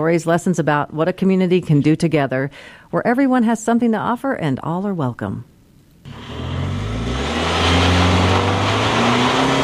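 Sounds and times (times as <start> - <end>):
speech: 0.0 - 6.2
side-by-side off-road vehicle engine starting and revving: 6.1 - 9.6.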